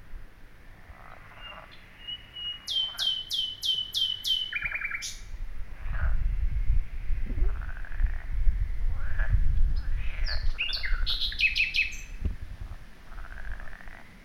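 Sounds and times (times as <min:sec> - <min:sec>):
low rumbling background noise: 0:00.0 - 0:14.2
common nightingale Luscinia megarhynchos singing: 0:01.2 - 0:05.4, 0:09.6 - 0:12.3.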